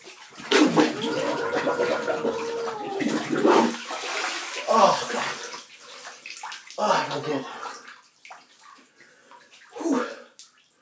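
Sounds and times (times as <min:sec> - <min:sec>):
bath water sloshing: 0:00.0 - 0:09.8
underwater bubbling gurgles as a head is dunked beneath bath water: 0:00.5 - 0:03.8
speech: 0:01.6 - 0:03.5, 0:07.2 - 0:07.6.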